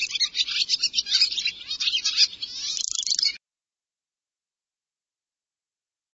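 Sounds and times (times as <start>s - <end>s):
birds chattering: 0.0s - 3.4s.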